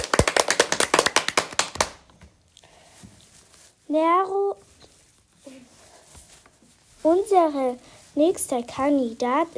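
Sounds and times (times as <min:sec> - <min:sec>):
brisk applause: 0:00.0 - 0:02.0
speech: 0:03.9 - 0:04.7, 0:07.0 - 0:09.5.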